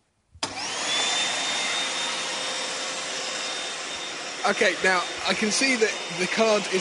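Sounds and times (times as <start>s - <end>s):
vacuum cleaner motor running with loud whine and roar: 0.4s - 6.7s
speech: 4.4s - 6.7s.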